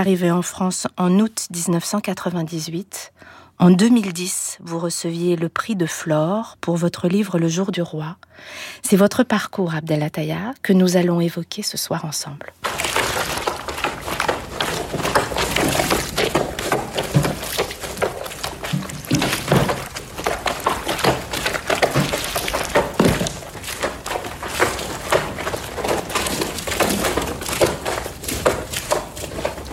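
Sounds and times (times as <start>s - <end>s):
speech: 0.0s - 12.9s
feet trampling dirty blankets in washtubs to wash them: 12.6s - 29.7s
wet splashing in washtubs: 12.6s - 29.7s.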